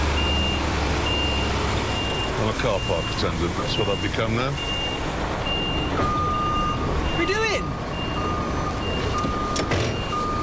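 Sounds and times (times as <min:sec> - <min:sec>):
truck reversing alarm beeping as a wagon backs up in a farmyard: 0:00.0 - 0:10.4
speech: 0:02.5 - 0:04.8.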